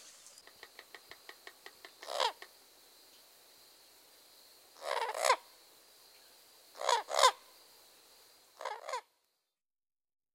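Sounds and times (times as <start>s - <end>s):
Common Gallinule giving harsh scratchy squawks: 2.0s - 2.4s, 4.8s - 5.4s, 6.8s - 7.4s, 8.6s - 9.1s.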